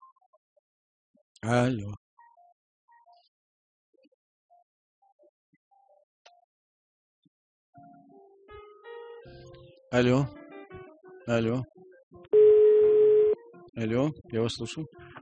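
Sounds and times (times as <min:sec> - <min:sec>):
speech: 0:01.4 - 0:02.0, 0:09.9 - 0:10.4, 0:11.3 - 0:12.4, 0:13.8 - 0:15.2
short electronic telephone tones: 0:12.4 - 0:13.4.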